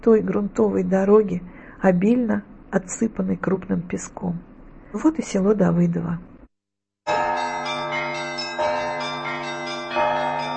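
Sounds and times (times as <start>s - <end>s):
speech: 0.0s - 6.3s
church bells ringing: 7.1s - 10.5s.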